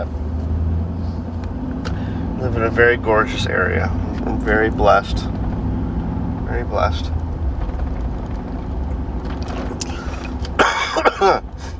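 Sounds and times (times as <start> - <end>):
steady low rumble of an idling vehicle or engine: 0.0 - 11.7
speech: 2.5 - 5.4, 6.5 - 7.2
person coughing: 10.6 - 11.5.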